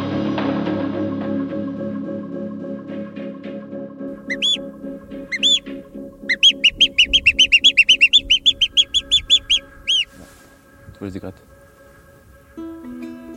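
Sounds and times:
low steady drone: 0.0 - 13.3
person whistling in imitation of bird song: 4.3 - 4.6, 5.3 - 5.7, 6.3 - 10.1
speech: 11.1 - 11.5.

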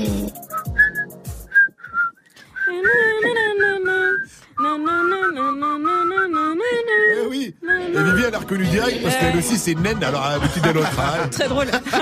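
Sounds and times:
person whistling a tune: 0.4 - 8.2
speech: 8.5 - 12.0
laughter: 9.0 - 12.0.

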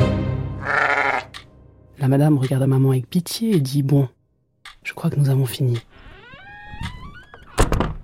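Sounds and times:
sheep bleating: 0.6 - 1.4
speech: 2.0 - 4.2, 4.8 - 6.0.

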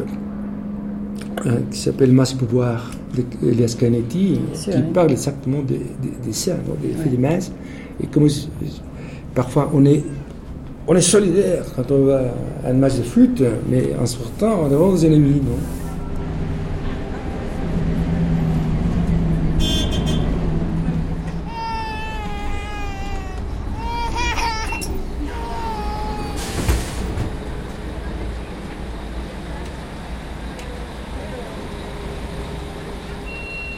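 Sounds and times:
busy city traffic roar on a street in Mexico City: 0.0 - 33.7
speech: 1.4 - 10.2, 10.9 - 15.8
short horn-like blasts: 19.6 - 20.6.

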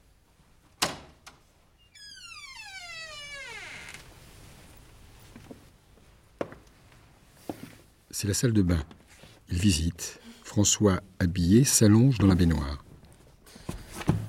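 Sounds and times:
door creaking open: 0.8 - 4.2
speech: 8.2 - 9.0, 9.6 - 12.8.

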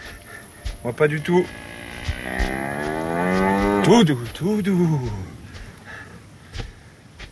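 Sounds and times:
speech: 0.8 - 1.7, 2.3 - 5.3
gigantic cow mooing: 1.3 - 4.1.

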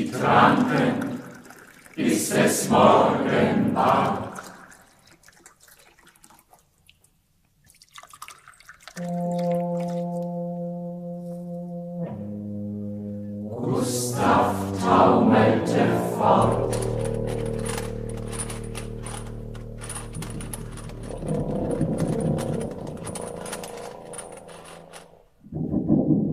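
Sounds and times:
speech: 0.2 - 1.1, 2.3 - 4.2
low hollow hooting tones from a champagne bottle: 9.0 - 25.0
clattering rattling hits from assorted objects played as percussion: 16.4 - 26.2.

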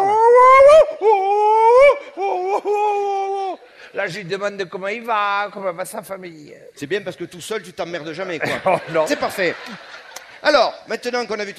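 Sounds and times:
person howling like a wolf: 0.0 - 3.6
speech: 4.0 - 11.5
laughter: 8.4 - 10.8.

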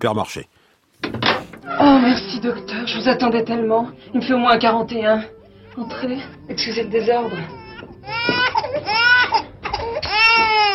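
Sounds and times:
speech: 0.0 - 7.6
baby wailing: 1.6 - 2.6, 5.4 - 10.7.

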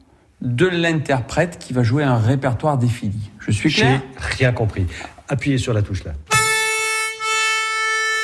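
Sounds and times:
speech: 0.4 - 6.4
accordion reeds sounding on a registration device: 6.3 - 8.2.

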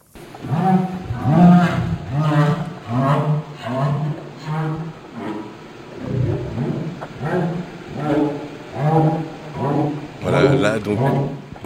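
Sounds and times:
humpback whale social communication calls: 0.0 - 11.6
speech: 10.9 - 11.6.

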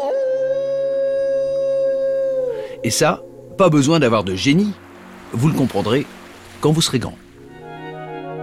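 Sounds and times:
wolf howling: 0.0 - 4.2
speech: 2.8 - 7.3.

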